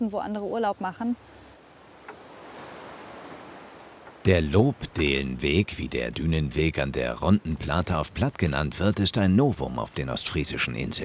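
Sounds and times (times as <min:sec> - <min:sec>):
speech: 0:00.0 - 0:01.4, 0:04.2 - 0:11.0
sea surf on an East Frisian island: 0:00.7 - 0:07.2.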